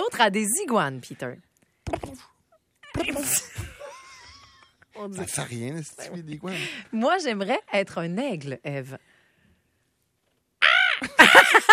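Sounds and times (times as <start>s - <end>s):
speech: 0.2s - 2.4s, 5.0s - 9.1s
laughter: 2.9s - 5.0s, 11.0s - 11.7s
crow cawing: 10.6s - 11.2s.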